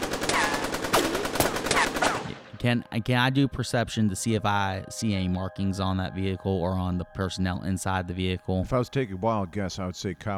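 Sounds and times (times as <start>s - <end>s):
assault rifle firing from the back window of a blacked-out SUV: 0.0s - 2.5s
speech: 2.6s - 10.3s.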